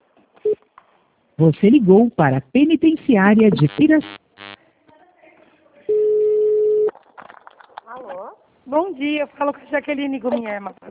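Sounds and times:
speech: 1.4 - 4.2, 8.7 - 10.8
telephone busy signal after a dropped call: 3.5 - 4.6, 5.9 - 6.9.

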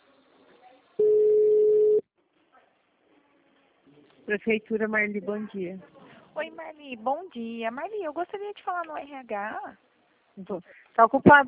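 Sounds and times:
telephone ringback tone waiting for a town hall switchboard to answer: 1.0 - 2.0
speech: 4.3 - 11.4.

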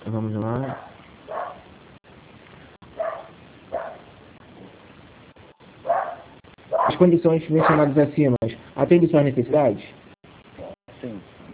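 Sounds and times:
faint hiss: 0.0 - 11.5
speech: 0.1 - 0.9, 7.0 - 9.9
small dogs barking at a home: 0.6 - 1.7, 2.9 - 4.1, 5.8 - 7.0, 7.6 - 8.0.

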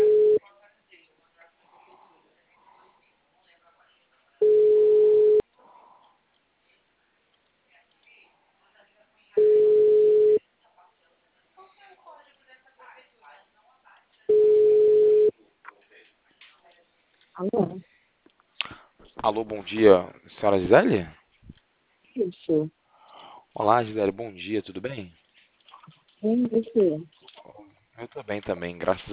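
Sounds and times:
telephone ringback tone while a call waits to be answered: 0.0 - 0.4, 4.4 - 5.4, 9.4 - 10.4, 14.3 - 15.3
speech: 17.4 - 17.9, 19.2 - 21.2, 22.2 - 22.8, 23.6 - 25.2, 26.2 - 27.2, 28.0 - 29.1.

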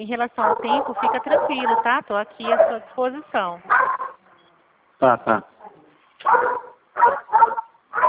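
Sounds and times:
speech: 0.0 - 3.8, 5.0 - 5.5, 6.2 - 7.2
dog barking: 0.4 - 2.9, 3.7 - 4.2, 5.6 - 8.0.

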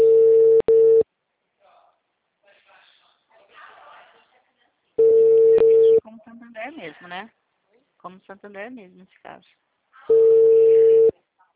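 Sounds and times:
telephone tone: 0.0 - 1.0, 5.0 - 6.0, 10.1 - 11.1
speech: 6.8 - 7.4, 8.0 - 9.6.

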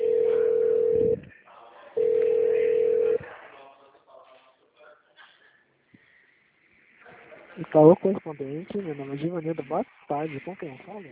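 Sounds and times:
telephone line beeps while a call is transferred: 0.0 - 1.2, 2.0 - 3.2
speech: 7.7 - 11.1.

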